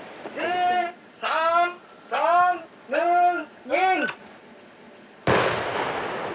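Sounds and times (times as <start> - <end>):
person calling drawn-out warnings before a controlled detonation: 0.3 - 4.2
controlled detonation of an unexploded bomb in Laos: 5.3 - 6.3.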